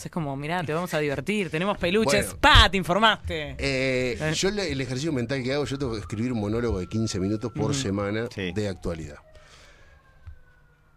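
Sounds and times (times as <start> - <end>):
low background rumble: 0.0 - 5.3
speech: 0.0 - 9.3
ambulance siren wailing: 3.5 - 10.9.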